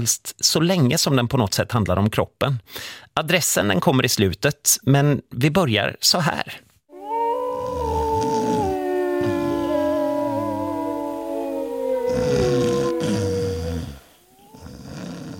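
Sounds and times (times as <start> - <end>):
speech: 0.0 - 6.7
wolf howling: 6.9 - 14.6
person snoring: 7.0 - 15.3.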